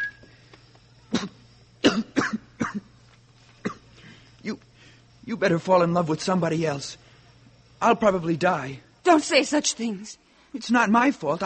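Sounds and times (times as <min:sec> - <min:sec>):
faint steady hum: 0:00.0 - 0:11.4
person coughing harshly: 0:01.1 - 0:02.9, 0:03.6 - 0:03.9
speech: 0:05.4 - 0:07.0, 0:07.8 - 0:11.4.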